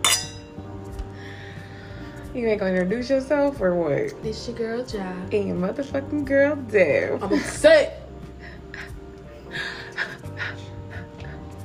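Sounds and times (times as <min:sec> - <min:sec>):
champagne glasses clinking: 0:00.0 - 0:00.6
speech: 0:02.3 - 0:08.0.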